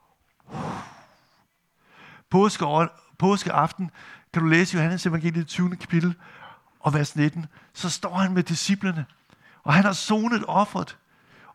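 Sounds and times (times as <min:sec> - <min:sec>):
quiet air noise: 0:00.0 - 0:11.5
voice imitating a forceful exhaled breath: 0:00.5 - 0:01.3
speech: 0:02.3 - 0:11.0.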